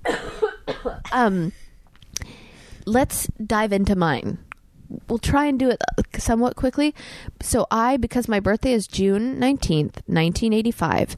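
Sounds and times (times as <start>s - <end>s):
person coughing in harsh bursts: 0.0s - 1.7s
speech: 1.1s - 1.6s, 2.9s - 11.1s
short breaths between coughs: 1.6s - 2.9s, 7.0s - 7.4s.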